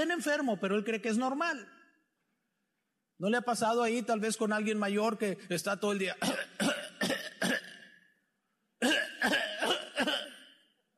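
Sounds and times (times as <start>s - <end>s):
speech: 0.0s - 1.8s, 3.2s - 6.4s
man coughing harshly: 6.2s - 8.0s, 8.8s - 10.7s.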